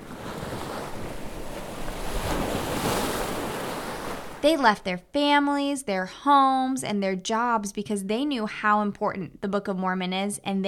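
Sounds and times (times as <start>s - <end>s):
ocean waves washing in a steady broad roar: 0.0s - 4.9s
speech: 4.4s - 10.6s.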